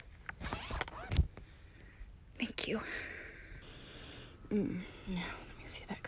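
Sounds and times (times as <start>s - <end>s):
zipper down the back of a dress being unzipped: 0.4s - 1.2s
speech: 2.7s - 3.1s, 4.5s - 5.9s.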